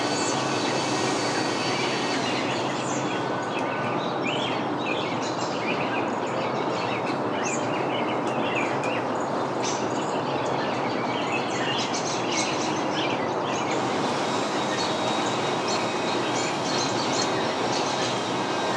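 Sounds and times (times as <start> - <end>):
leaf blower droning in a suburban backyard: 0.0 - 4.3, 13.5 - 18.7
backyard birds chirping and whistling: 0.0 - 18.7.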